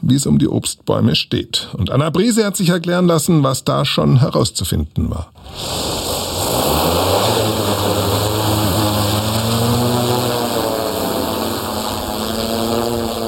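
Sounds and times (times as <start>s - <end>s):
speech: 0.1s - 7.0s
small drone propellers buzzing overhead: 5.5s - 13.2s.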